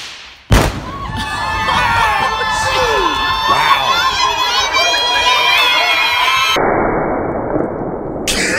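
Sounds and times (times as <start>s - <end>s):
explosion of a wedding dress laced with explosives: 0.5s - 1.6s, 6.5s - 8.5s
crowd noise: 0.6s - 6.6s.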